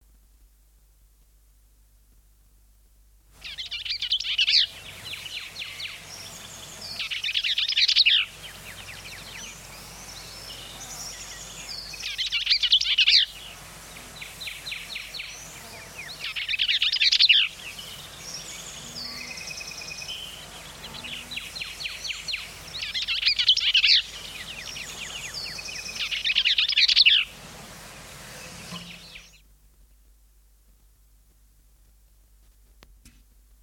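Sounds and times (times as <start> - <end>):
songbirds singing: 3.4 - 30.1.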